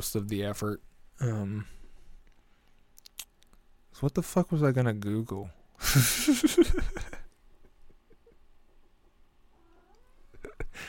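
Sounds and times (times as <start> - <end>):
speech: 0.0 - 1.8, 4.0 - 7.2
cat meowing: 9.5 - 10.2.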